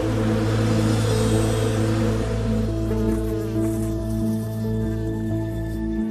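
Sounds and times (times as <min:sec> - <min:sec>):
many honeybees buzzing around a hive: 0:00.1 - 0:06.0.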